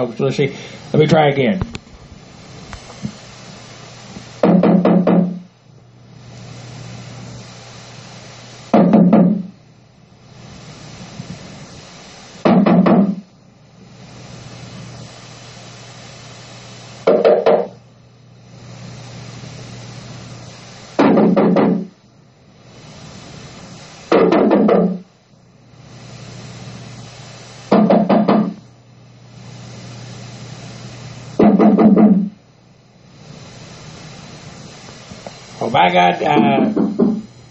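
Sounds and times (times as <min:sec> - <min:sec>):
speech: 0:00.0 - 0:01.8, 0:35.8 - 0:36.8
steady low hum: 0:00.0 - 0:37.4
man knocking loudly on a door: 0:04.4 - 0:05.4, 0:08.8 - 0:09.5, 0:12.5 - 0:13.2, 0:17.1 - 0:17.8, 0:21.0 - 0:21.9, 0:24.2 - 0:25.0, 0:27.7 - 0:28.6, 0:31.4 - 0:32.3, 0:36.7 - 0:37.3.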